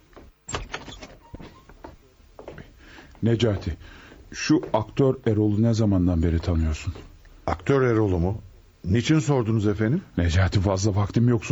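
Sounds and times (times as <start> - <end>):
door opening with a sharp click and a dull knock: 0.5 - 1.8
speech: 3.2 - 11.5.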